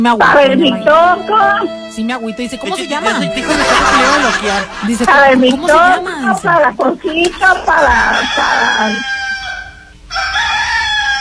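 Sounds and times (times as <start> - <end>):
speech: 0.0 - 9.1
laughter: 3.0 - 8.7
recording of a rooster crowing: 7.8 - 11.1.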